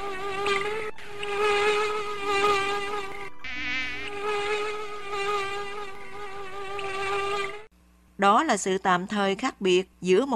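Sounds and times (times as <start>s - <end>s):
swarm of mosquitoes buzzing inside a tent at night: 0.0s - 7.7s
speech: 8.2s - 10.3s.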